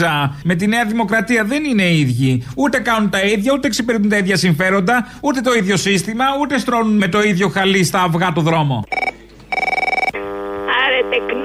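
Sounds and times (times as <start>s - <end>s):
speech: 0.0s - 9.0s
electronic telephone ringing in warbling bursts: 8.9s - 11.4s
steady buzzy telephone tone: 8.9s - 11.4s.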